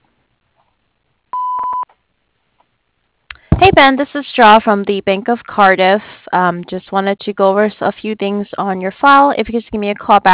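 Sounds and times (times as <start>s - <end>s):
electronic answering machine beep: 1.4s - 1.8s
speech: 3.6s - 10.3s.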